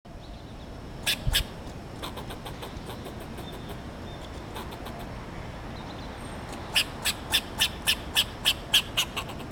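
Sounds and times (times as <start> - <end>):
Sciurus niger squirrel: 1.0 - 5.1, 6.5 - 9.5.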